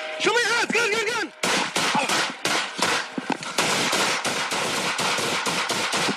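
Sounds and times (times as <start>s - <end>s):
people shouting: 0.2s - 2.4s
police gunfire in a backyard: 1.4s - 6.1s.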